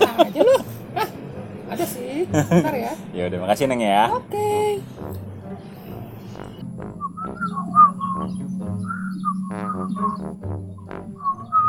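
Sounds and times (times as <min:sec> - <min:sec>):
laughter: 0:00.0 - 0:03.0
low steady hum: 0:00.0 - 0:11.6
speech: 0:02.3 - 0:04.9
person whistling a tune: 0:07.0 - 0:10.3.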